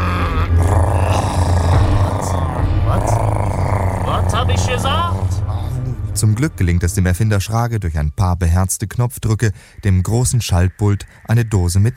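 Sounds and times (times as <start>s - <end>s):
several stomachs growling loudly from hunger: 0.0s - 5.8s
speech: 6.2s - 11.9s.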